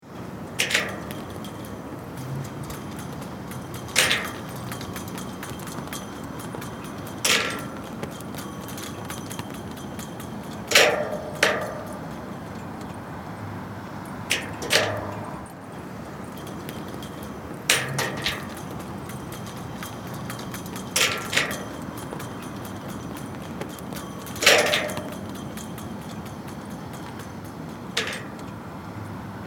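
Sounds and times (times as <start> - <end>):
chain clanking on flagpole in a landscape: 0.1 - 13.2, 13.8 - 29.3.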